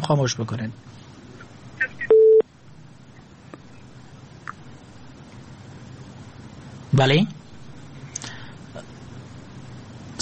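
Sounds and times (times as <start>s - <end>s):
speech: 0.1s - 1.0s, 7.0s - 7.4s
telephone busy tone after a listener's call-in drops: 2.1s - 2.4s.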